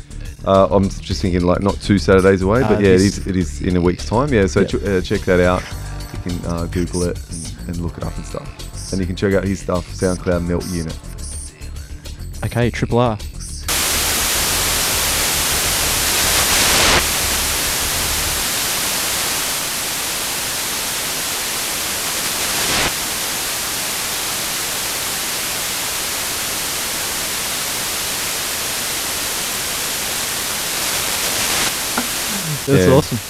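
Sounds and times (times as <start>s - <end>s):
speech: 0.4s - 11.2s, 12.4s - 13.3s, 32.7s - 33.0s
laughter: 1.6s - 5.6s, 32.3s - 33.2s
dense hissing white noise music: 2.5s - 3.2s, 13.7s - 33.2s.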